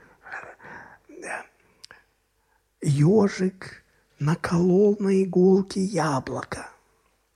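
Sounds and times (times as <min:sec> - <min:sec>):
breathy whispering into someone's ear: 0:00.0 - 0:01.6
speech: 0:02.8 - 0:06.7.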